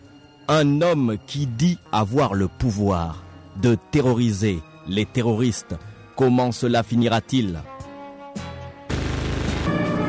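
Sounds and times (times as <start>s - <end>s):
speech: 0.5s - 7.7s
gunfire from a rooftop in a dramatized shootout: 8.9s - 9.8s.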